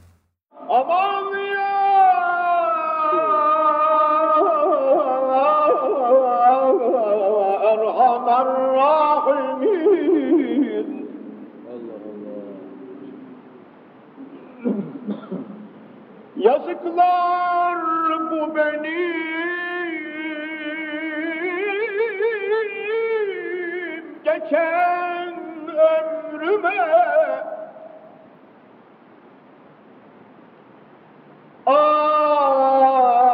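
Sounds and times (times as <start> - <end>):
solo male voice singing a kaside with melismatic lines: 0.5 - 11.0, 16.4 - 27.8, 31.7 - 33.3
speech: 0.7 - 1.1.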